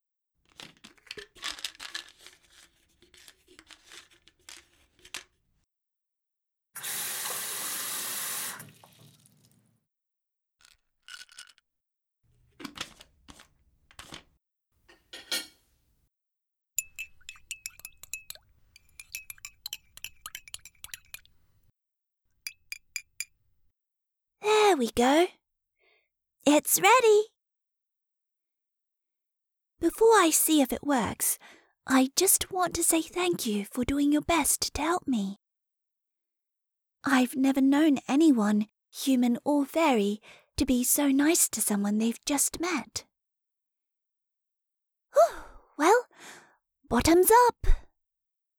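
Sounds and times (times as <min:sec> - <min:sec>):
water pouring into a glass: 0:08.4 - 0:09.6, 0:16.8 - 0:21.5, 0:22.5 - 0:23.3
light clatters: 0:16.8 - 0:21.4
glass clinking: 0:16.8 - 0:21.6, 0:22.5 - 0:23.3
speech: 0:24.8 - 0:25.4, 0:26.5 - 0:27.3, 0:29.8 - 0:35.4, 0:37.0 - 0:43.1, 0:45.2 - 0:47.8.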